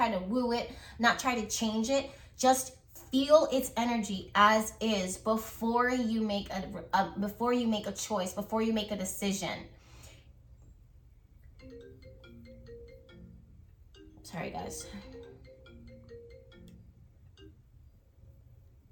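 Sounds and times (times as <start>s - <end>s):
speech: 0.0s - 9.8s, 14.3s - 15.1s
melodic phone ringtone: 11.6s - 18.0s.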